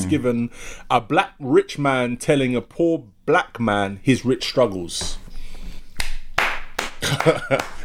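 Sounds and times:
speech: 0.0 - 5.2, 7.0 - 7.8
single person clapping hands: 6.0 - 7.8.

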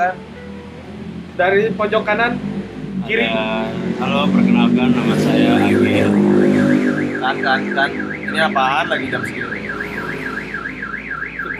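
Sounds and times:
speech: 0.0 - 0.3, 1.4 - 6.6, 7.2 - 9.7
car alarm wailing outside: 5.5 - 11.5.

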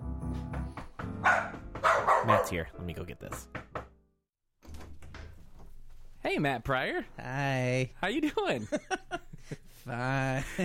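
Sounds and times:
dog barking: 1.2 - 2.6
speech: 2.3 - 3.6, 6.2 - 10.6.

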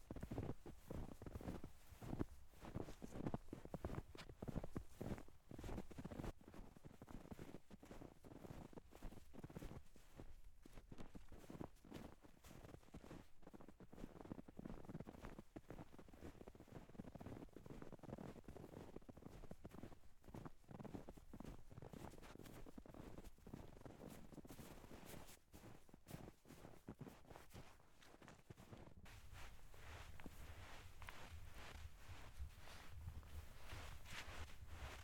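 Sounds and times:
footsteps crunching through deep snow: 0.0 - 35.0
wind rumbling low against the microphone: 29.1 - 35.0.

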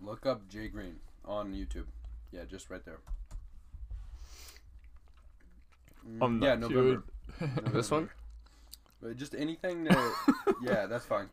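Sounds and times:
speech: 0.1 - 3.2, 6.0 - 8.2, 9.0 - 11.3
two people chewing close to the microphone: 4.2 - 9.1.

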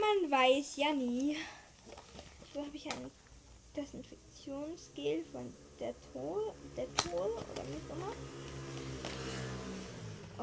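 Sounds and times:
speech: 0.3 - 1.6, 2.6 - 3.2, 3.8 - 9.1
motorcycle engine droning outside an open window: 5.4 - 10.4.

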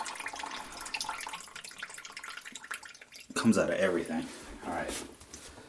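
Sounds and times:
water poured to lubricate a clog: 0.0 - 3.8
speech: 3.4 - 5.2.

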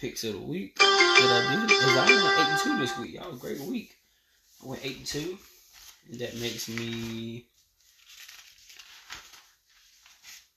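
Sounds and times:
speech: 0.0 - 4.0, 4.6 - 7.5
paper crinkling and shuffling while someone searches for lost notes: 5.4 - 10.5.

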